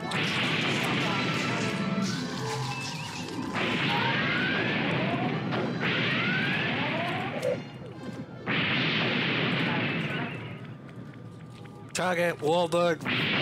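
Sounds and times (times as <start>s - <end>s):
starship phasers firing in a bridge-crew video game: 0.1s - 7.6s, 8.5s - 10.6s, 13.1s - 13.4s
speech: 12.1s - 13.4s.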